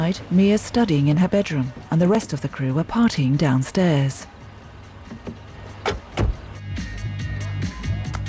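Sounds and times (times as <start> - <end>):
speech: 0.0 - 4.3
taxi engine idling outside a house: 0.0 - 7.6
sharp clunks like doors or windows moving: 5.1 - 6.4.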